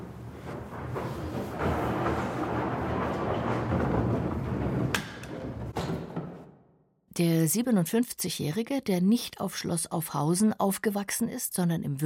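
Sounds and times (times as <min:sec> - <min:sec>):
hand-carved skittle balls rolling along the return track of an old skittle alley: 0:00.0 - 0:06.5
speech: 0:07.2 - 0:12.0.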